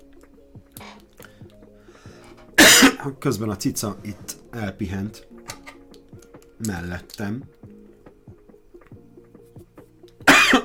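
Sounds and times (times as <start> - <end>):
harsh human cough: 2.6 - 3.0, 10.3 - 10.6
speech: 3.0 - 5.3, 6.6 - 7.6.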